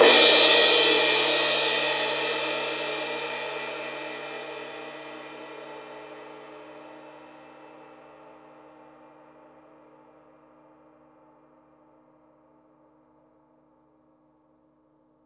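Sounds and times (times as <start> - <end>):
crash cymbal: 0.0 - 4.6.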